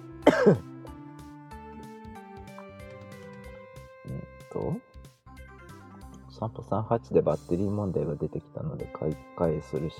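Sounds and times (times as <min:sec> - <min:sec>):
loud throat-clearing cough: 0:00.2 - 0:00.7
speech: 0:00.4 - 0:00.7, 0:06.4 - 0:09.9.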